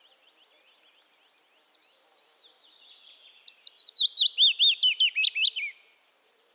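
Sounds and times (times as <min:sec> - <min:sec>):
Phylloscopus trochilus acredula willow warbler song: 0:02.9 - 0:05.8.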